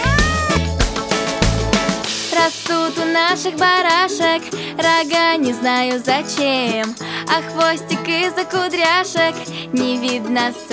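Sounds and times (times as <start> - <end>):
cat meowing: 0.0 - 0.7
children's song about a cat: 0.0 - 1.4, 2.1 - 10.7
speech: 2.4 - 10.7.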